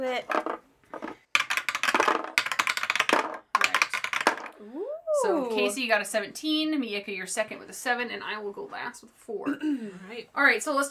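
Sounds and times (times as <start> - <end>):
speech: 0.0 - 0.6, 5.6 - 10.8
dice clattering and rattling: 0.2 - 4.6.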